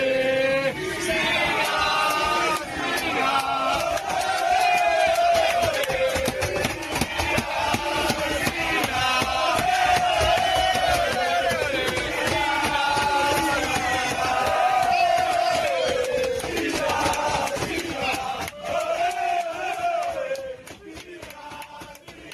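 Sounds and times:
Italy national football team players chanting in unison to cheer a teammate: 0.0 - 22.3.

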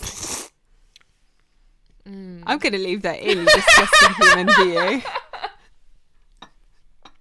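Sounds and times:
slurping rice from a bowl: 0.0 - 0.6
speech: 2.5 - 5.2
laughter: 3.3 - 5.6.

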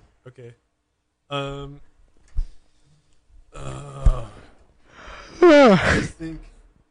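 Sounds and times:
speech: 0.2 - 0.7, 1.3 - 1.9, 5.4 - 6.5
person yawning: 3.6 - 4.5, 5.1 - 6.2.

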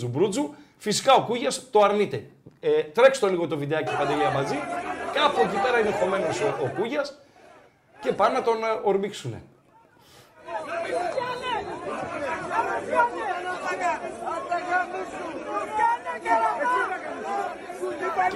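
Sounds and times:
speech: 0.0 - 7.2, 8.0 - 9.5
tense football crowd scuffle with people shouting and cursing in Megara: 3.6 - 8.9, 9.6 - 18.3.

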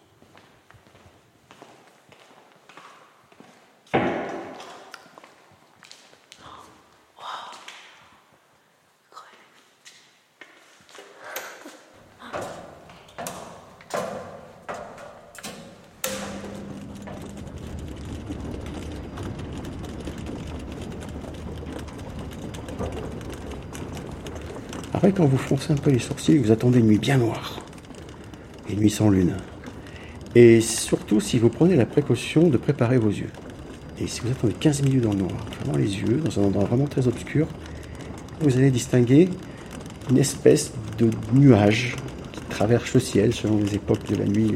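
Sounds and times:
footsteps inside a large spherical observatory dome: 0.0 - 8.4, 9.6 - 44.5
mechanical rumble and hum inside an observatory dome: 15.1 - 44.5
speech: 25.0 - 27.6, 28.7 - 29.5, 30.4 - 33.4, 34.0 - 37.6, 38.4 - 39.5, 40.1 - 42.0, 42.6 - 44.5.

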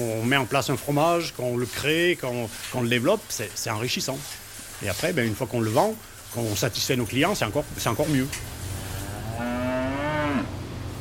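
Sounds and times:
speech: 0.0 - 8.6
dairy cow mooing during milking: 8.9 - 10.6.

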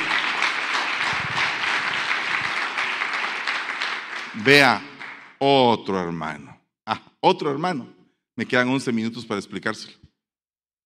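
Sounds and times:
crowd applauding: 0.0 - 5.4
speech: 4.4 - 10.0.

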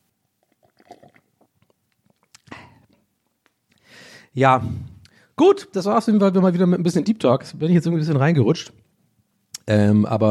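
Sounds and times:
loud rushing gulp: 0.4 - 3.0
person drinking: 0.4 - 3.0
soft wet mouth clicks and smacks: 0.4 - 3.9
speech: 4.3 - 8.8, 9.7 - 10.2.

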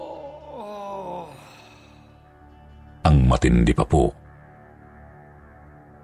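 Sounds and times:
eerie moaning groan from an old man locked in a vacant room: 0.0 - 2.0
speech: 3.1 - 4.2.

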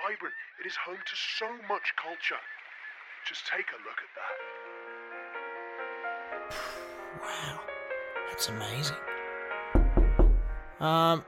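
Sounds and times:
speech: 0.1 - 2.6, 3.2 - 4.8, 6.4 - 7.7, 8.3 - 9.1, 10.8 - 11.2
firm resonant knocks on a door: 9.8 - 10.8.

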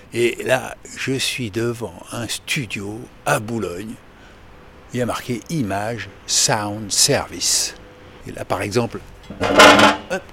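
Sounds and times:
speech: 0.1 - 4.1, 4.9 - 10.3
metal chair dragging across the floor in front of a studio door: 9.3 - 10.2.

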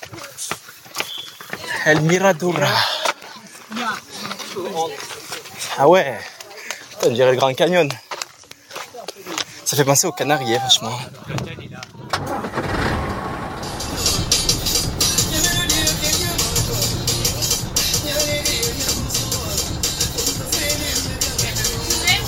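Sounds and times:
many voices inside a moving bus: 1.5 - 12.4, 13.7 - 22.2
speech: 1.8 - 2.9, 3.8 - 5.1, 5.8 - 6.3, 7.0 - 8.0, 9.7 - 11.9
moving bus engine rumble: 11.4 - 22.2.

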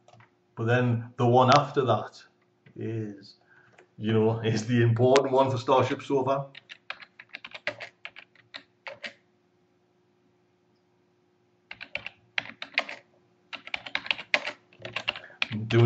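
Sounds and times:
speech: 0.6 - 3.4, 4.0 - 6.6
typing on a computer keyboard: 6.5 - 9.2, 11.7 - 15.8.

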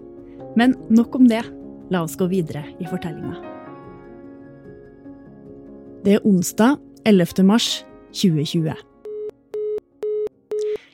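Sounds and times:
speech: 0.5 - 3.5, 6.0 - 8.9
telephone busy tone beeps through a handset after hanging up: 9.0 - 10.8.

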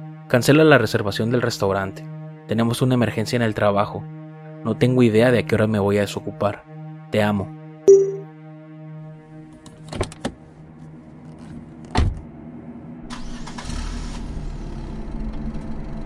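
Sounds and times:
speech: 0.3 - 8.0
car's electronic chime: 7.9 - 8.2
car engine cranking and idling during a storm: 13.0 - 16.0.

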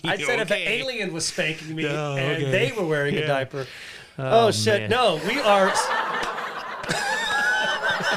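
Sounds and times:
speech: 0.0 - 6.0
canned laughter sound effect: 5.3 - 8.1.

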